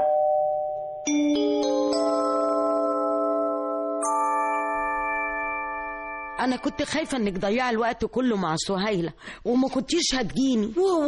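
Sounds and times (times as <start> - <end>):
electronic doorbell at the door of a home chiming a melody: 0.0 - 7.2
speech: 6.4 - 11.0.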